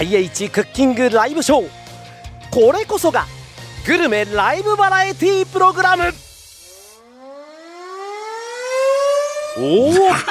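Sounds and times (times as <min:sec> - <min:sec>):
speech: 0:00.0 - 0:01.8, 0:02.5 - 0:06.2, 0:09.6 - 0:10.2
loud siren signaling end of match: 0:04.3 - 0:10.2.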